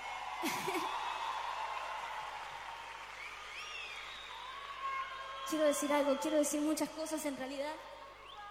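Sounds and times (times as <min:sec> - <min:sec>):
concert audience applauding in Viña del Mar Chile: 0:00.0 - 0:06.0
speech: 0:05.5 - 0:08.0.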